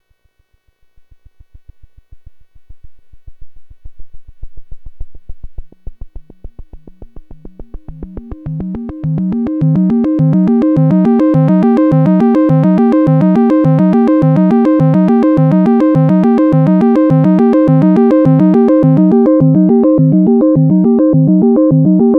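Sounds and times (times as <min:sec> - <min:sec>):
virtual analog synthesizer arpeggio with oscillator modulation: 0:06.2 - 0:22.1.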